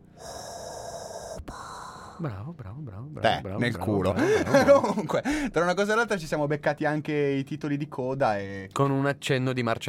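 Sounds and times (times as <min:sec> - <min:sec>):
voice imitating the raspy hissing breath of a mechanical respirator: 0:00.2 - 0:02.4
speech: 0:02.2 - 0:09.8.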